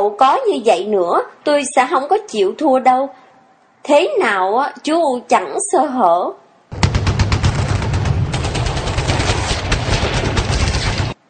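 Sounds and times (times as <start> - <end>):
speech: 0.0 - 3.2, 3.8 - 6.4
automatic gunfire: 6.7 - 11.2.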